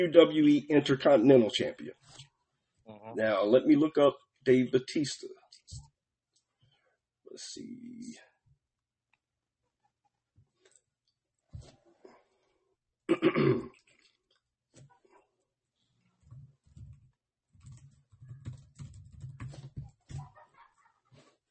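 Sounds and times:
speech: 0.0s - 2.3s, 2.9s - 5.8s, 7.4s - 8.3s, 13.1s - 13.8s
forceful typing on a computer keyboard: 17.6s - 19.7s.

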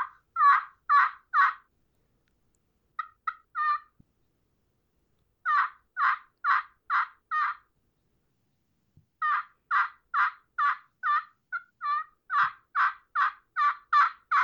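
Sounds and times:
turkey call producing coarse gobbler yelps: 0.0s - 1.6s, 3.0s - 3.9s, 5.4s - 7.6s, 9.2s - 14.4s.

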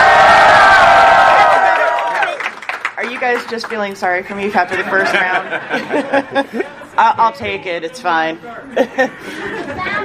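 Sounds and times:
audience screaming and cheering to vote for a contestant: 0.0s - 2.6s
speech: 3.3s - 9.9s
laughter: 4.7s - 7.0s, 8.6s - 10.0s.

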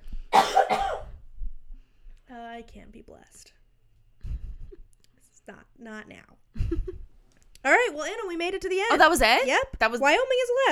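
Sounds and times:
harsh coughs: 0.4s - 1.2s
speech: 2.6s - 3.6s, 5.5s - 10.6s.

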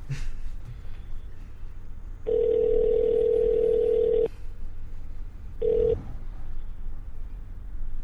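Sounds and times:
electronic phone line ring tone: 2.3s - 4.3s, 5.6s - 6.0s.

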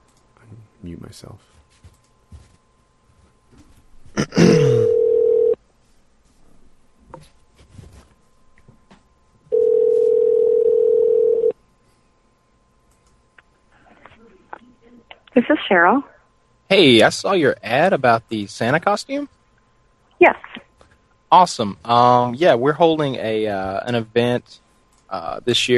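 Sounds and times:
speech: 0.8s - 1.9s, 15.7s - 16.1s, 16.7s - 19.4s, 20.2s - 20.4s, 21.3s - 25.7s
outgoing phone call ringing tone: 4.7s - 5.6s, 9.5s - 11.6s.

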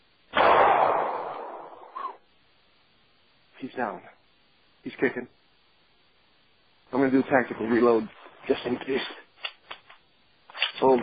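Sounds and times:
video game gunshot from a headshot: 0.3s - 2.2s
speech: 3.6s - 4.2s, 4.8s - 5.4s, 6.9s - 9.2s, 10.8s - 11.0s.

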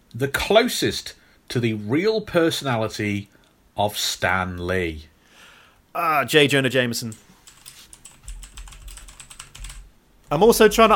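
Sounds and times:
speech: 0.1s - 5.1s, 6.0s - 7.3s, 10.3s - 10.9s
rapid typing on a computer keyboard: 7.1s - 9.9s.

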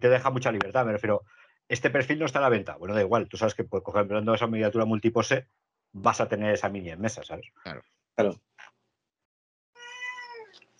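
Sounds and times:
speech: 0.0s - 8.7s
cat meowing: 9.8s - 10.6s.

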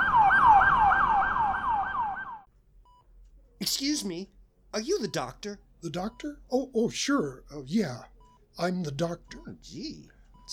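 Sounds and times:
ambulance siren yelping: 0.0s - 2.5s
speech: 3.6s - 10.5s.

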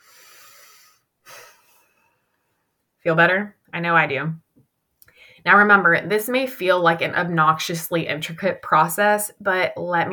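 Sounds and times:
deep breath: 0.0s - 2.8s, 5.0s - 5.4s
speech: 3.0s - 4.4s, 5.4s - 10.1s.

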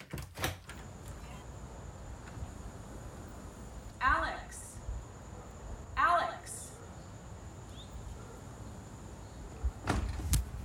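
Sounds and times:
back door rattling open: 0.0s - 1.0s, 9.8s - 10.4s
outdoor ambience: 0.0s - 10.6s.

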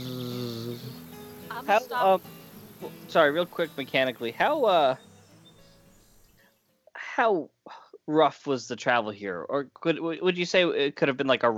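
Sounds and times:
voice imitating the buzz of a wasp nest: 0.0s - 3.8s
speech: 1.5s - 5.1s, 7.2s - 11.5s.

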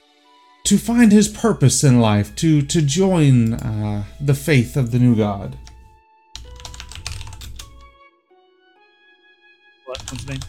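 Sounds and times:
speech: 0.7s - 5.7s, 10.3s - 10.4s
rapid typing on a computer keyboard: 6.4s - 7.9s, 10.0s - 10.4s.

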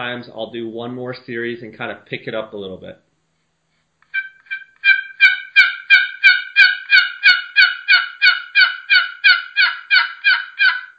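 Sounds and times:
speech: 0.0s - 3.0s
turkey box call playing raspy hen yelps: 4.1s - 10.9s.

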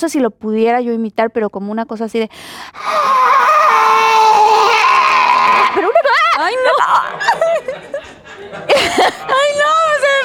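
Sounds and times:
speech: 0.0s - 3.4s
sharp intake of breath: 2.3s - 2.8s
voice imitating an eerie scream inside a crypt during a film shoot: 2.7s - 7.1s
laughter: 5.2s - 9.7s.

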